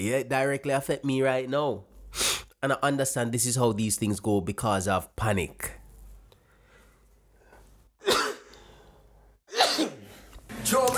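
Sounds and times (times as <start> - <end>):
speech: 0.0 - 5.8
person sneezing: 8.0 - 8.7, 9.5 - 10.3.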